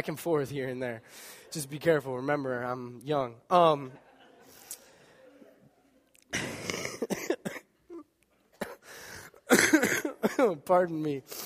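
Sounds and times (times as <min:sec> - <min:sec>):
speech: 0:00.0 - 0:04.1, 0:10.4 - 0:11.4
person coughing harshly: 0:06.3 - 0:08.9, 0:09.5 - 0:10.6.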